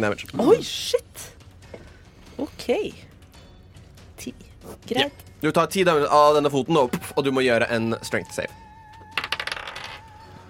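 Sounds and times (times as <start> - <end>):
speech: 0.0 - 1.3, 2.4 - 3.1, 4.2 - 8.6
small die clattering across a hard tabletop: 9.2 - 10.0.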